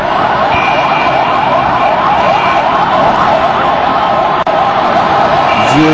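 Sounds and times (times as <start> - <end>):
busy noisy street at the site of a bomb blast: 0.0 - 5.9
several ambulance sirens wailing at the site of a bomb blast: 0.0 - 5.9.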